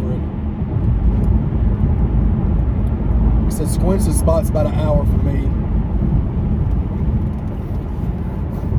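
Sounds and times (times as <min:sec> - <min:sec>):
car road rumble driving downtown over potholes: 0:00.0 - 0:08.7
speech: 0:03.7 - 0:05.6.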